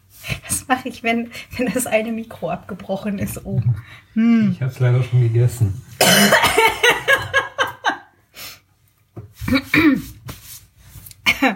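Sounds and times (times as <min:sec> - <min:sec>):
speech: 0:00.7 - 0:06.7, 0:09.5 - 0:10.1
raspy coughs: 0:06.0 - 0:07.2.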